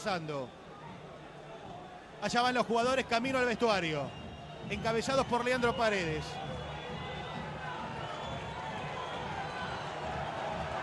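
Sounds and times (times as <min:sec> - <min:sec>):
speech: 0:00.0 - 0:00.6, 0:02.2 - 0:06.6
large stadium crowd clapping: 0:06.3 - 0:10.8.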